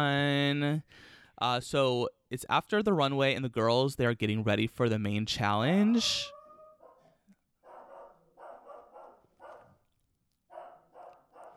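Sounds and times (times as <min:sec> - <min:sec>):
speech: 0:00.0 - 0:06.4
dog barking: 0:06.2 - 0:09.8, 0:10.5 - 0:11.5.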